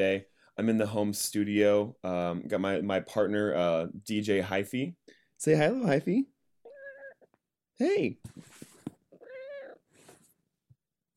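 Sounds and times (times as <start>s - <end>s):
speech: 0.0s - 6.3s, 7.8s - 8.7s
cat meowing: 6.6s - 7.3s, 9.2s - 9.8s
soft rustles: 8.2s - 9.0s, 9.9s - 10.4s.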